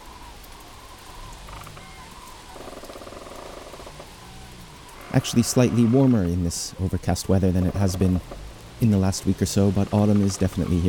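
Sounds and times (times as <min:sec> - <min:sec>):
steady rain falling: 0:00.0 - 0:10.8
speech: 0:05.2 - 0:10.8.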